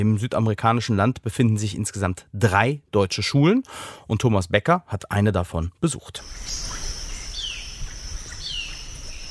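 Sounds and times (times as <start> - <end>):
speech: 0.0 - 6.9
birds calling in an empty schoolyard: 6.2 - 9.2
steady high insect-like buzz: 6.2 - 9.2.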